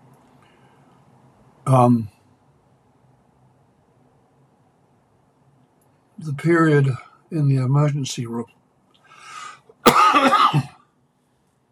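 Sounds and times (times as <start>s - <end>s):
faint breath: 0.3s - 1.1s, 9.0s - 9.8s
speech: 1.7s - 2.1s, 6.2s - 8.6s, 10.1s - 10.7s
harsh raspy lingering cough after an illness: 9.8s - 10.8s.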